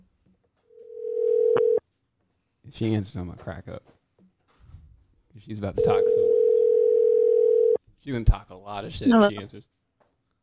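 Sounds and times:
electronic phone ringing tone on an outgoing call: 0.8s - 1.8s, 5.8s - 7.8s
speech: 2.7s - 4.0s, 5.4s - 6.4s, 8.0s - 9.7s.

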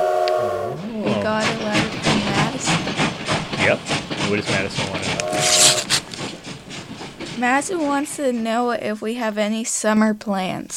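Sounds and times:
train whistle sound effect: 0.0s - 2.8s, 3.6s - 6.2s
train chugging and clattering sound effect: 0.0s - 10.7s
speech: 3.7s - 5.8s, 7.4s - 10.7s.

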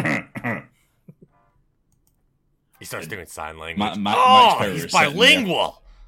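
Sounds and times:
person with a throat infection coughing: 0.0s - 0.7s
speech: 2.8s - 5.8s.

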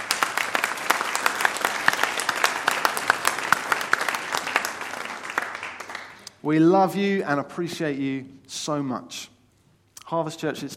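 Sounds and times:
church audience applauding: 0.0s - 6.4s
speech: 6.4s - 9.4s, 10.1s - 10.7s.

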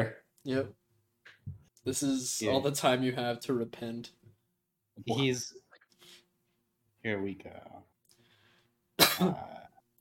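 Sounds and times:
speech: 0.0s - 0.8s, 1.8s - 4.2s, 5.0s - 5.6s, 7.0s - 7.9s, 9.2s - 9.6s
harsh cough: 9.0s - 9.7s.

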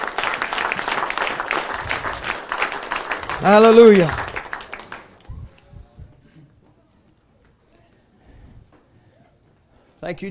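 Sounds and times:
audience applause: 0.0s - 5.3s
speech: 3.4s - 4.2s, 10.1s - 10.3s.

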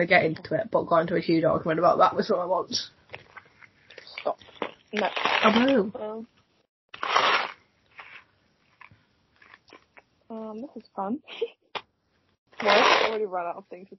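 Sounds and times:
speech: 0.0s - 3.0s, 4.2s - 6.4s, 10.3s - 11.6s, 12.6s - 13.9s
crunchy chewing of Smarties candy: 3.2s - 5.8s, 6.9s - 10.0s.

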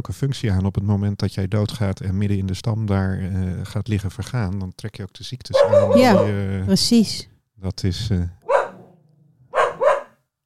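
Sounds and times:
speech: 0.0s - 8.4s
dog barking: 5.5s - 6.4s, 8.4s - 10.2s.

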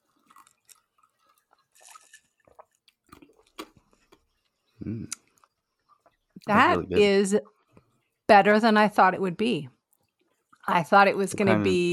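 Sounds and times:
sipping of a bourbon mint julep cocktail: 0.0s - 3.6s
speech: 4.8s - 5.2s, 6.5s - 7.6s, 8.3s - 9.8s, 10.7s - 11.9s.

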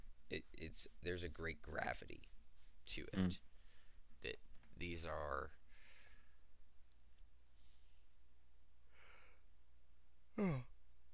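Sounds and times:
speech: 0.3s - 3.5s, 4.2s - 5.6s, 10.4s - 10.7s
person yawning: 10.4s - 10.7s.

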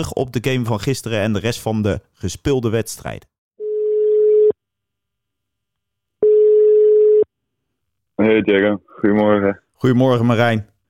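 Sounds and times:
speech: 0.0s - 3.3s, 8.2s - 10.7s
ringing tone of an outgoing telephone call: 3.6s - 4.6s, 6.2s - 7.3s.

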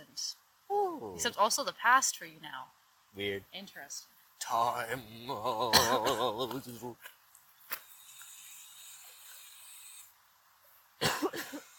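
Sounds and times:
faint hiss: 0.0s - 11.7s
speech: 1.0s - 7.2s
harsh coughs: 5.7s - 6.4s, 11.0s - 11.7s.

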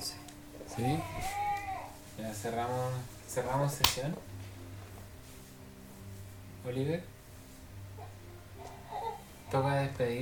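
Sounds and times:
baby crying: 0.0s - 2.0s, 8.0s - 9.4s
speech: 0.8s - 1.3s, 2.2s - 4.4s, 6.6s - 7.1s, 9.5s - 10.2s.

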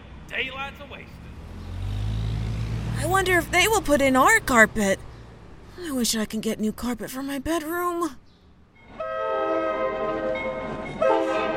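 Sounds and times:
low rumble of a passing train: 0.0s - 5.7s, 8.8s - 11.5s
speech: 0.4s - 1.3s, 3.0s - 5.1s, 5.8s - 8.2s
train horn blaring: 8.9s - 11.5s.

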